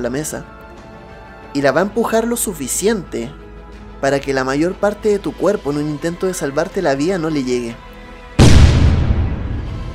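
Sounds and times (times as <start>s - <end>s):
speech: 0.0s - 0.6s, 1.5s - 3.4s, 4.0s - 7.9s
powerful explosion throwing out flames and dust: 8.4s - 9.9s.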